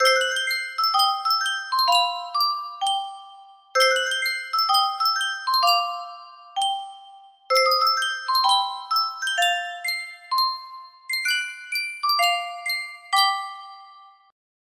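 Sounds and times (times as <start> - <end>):
Sankyo music box melody: 0.0 - 14.4.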